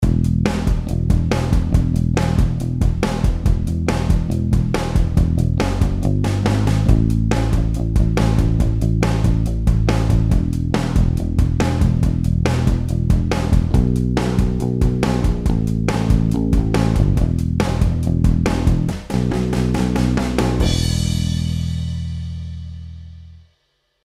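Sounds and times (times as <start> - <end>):
drums playing blues ride rhythm at 140 BPM: 0.0 - 23.4
bass playing blues at 140 BPM: 0.0 - 24.0.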